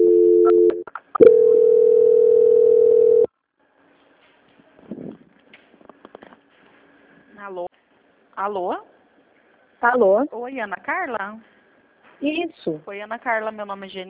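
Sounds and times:
telephone line tone during call transfer to a quality-control line: 0.0 - 3.3
speech: 8.4 - 8.9, 9.8 - 11.5, 12.2 - 14.0.

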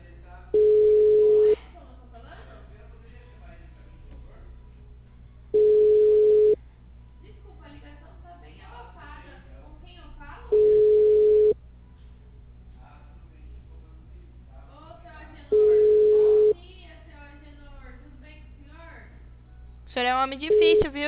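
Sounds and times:
telephone call tone beeps while placing a call: 0.6 - 1.6, 5.6 - 6.6, 10.5 - 11.6, 15.6 - 16.6, 20.5 - 20.9
speech: 20.3 - 21.0.

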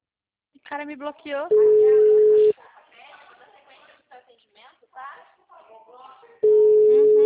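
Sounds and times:
speech: 0.7 - 2.0
ringback tone of an outgoing telephone call: 1.5 - 2.5, 6.4 - 7.2.

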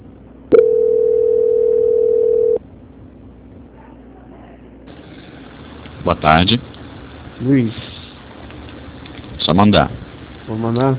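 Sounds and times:
telephone tone during a call transfer: 0.5 - 2.6
speech: 6.1 - 6.7, 7.4 - 7.8, 9.5 - 10.9.

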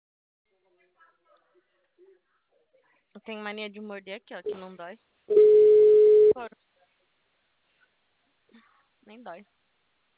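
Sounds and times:
speech: 2.8 - 5.6, 6.4 - 6.7, 9.1 - 9.6
telephone ringback tone while a call goes unanswered: 5.3 - 6.4.

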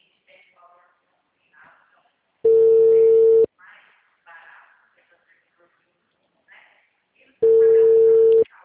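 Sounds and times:
telephone call tones while a call is dialed: 2.5 - 3.5, 7.4 - 8.5.

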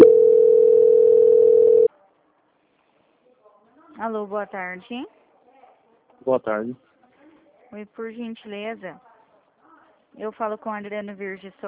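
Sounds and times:
telephone line tone during a call transfer: 0.0 - 1.9
speech: 4.0 - 5.2, 6.2 - 6.9, 7.7 - 9.1, 10.2 - 11.6.

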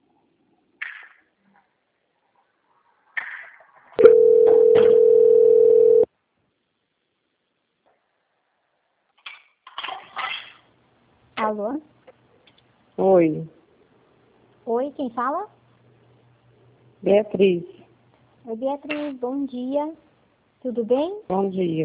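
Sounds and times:
telephone ringing tone during call transfer: 4.0 - 6.1
speech: 13.1 - 13.5, 14.9 - 15.6, 17.0 - 17.8, 18.4 - 20.0, 20.6 - 21.8.

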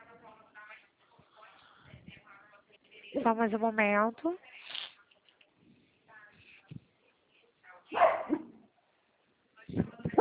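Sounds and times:
speech: 3.2 - 4.5
small dog barking: 7.9 - 8.6.

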